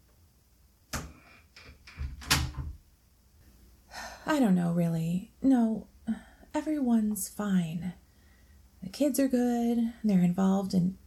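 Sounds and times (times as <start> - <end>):
door shutting with a thump: 0.9 - 2.8
door handle rattling: 1.6 - 2.8
speech: 4.3 - 8.0, 8.9 - 11.0.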